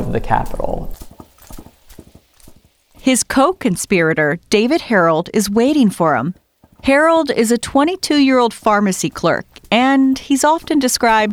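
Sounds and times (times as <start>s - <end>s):
speech: 0.1s - 1.0s, 3.1s - 11.3s
horse hooves clip-clopping: 0.4s - 3.5s, 6.4s - 11.3s.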